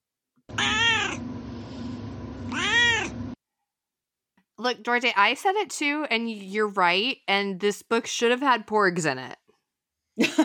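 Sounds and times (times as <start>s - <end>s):
cat meowing: 0.5s - 1.2s, 2.5s - 3.2s
speech: 4.6s - 9.4s.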